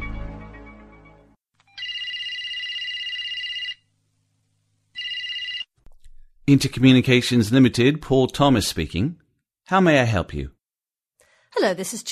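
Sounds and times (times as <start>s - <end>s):
telephone ringing with a bright electronic trill: 1.7s - 3.9s, 4.9s - 5.8s
speech: 6.5s - 10.6s, 11.6s - 12.0s.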